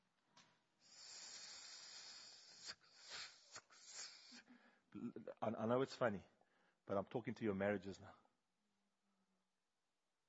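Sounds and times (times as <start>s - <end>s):
voice imitating a snake's hiss: 0.8s - 4.5s
speech: 5.0s - 6.3s, 6.9s - 8.2s.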